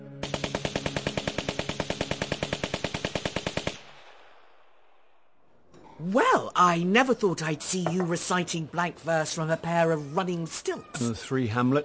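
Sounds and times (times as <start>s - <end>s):
soldiers firing a machine gun: 0.2s - 3.9s
speech: 6.0s - 11.8s.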